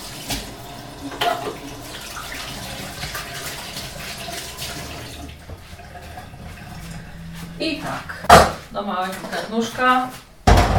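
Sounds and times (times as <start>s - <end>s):
running tap water: 0.0s - 8.4s
speech: 7.6s - 10.2s.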